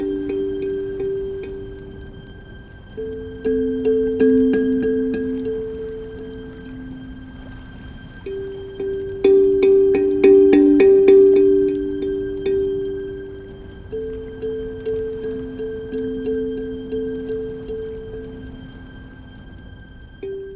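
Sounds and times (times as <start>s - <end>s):
plucked kalimba melody from a video game opening: 0.0s - 19.6s, 20.2s - 20.5s.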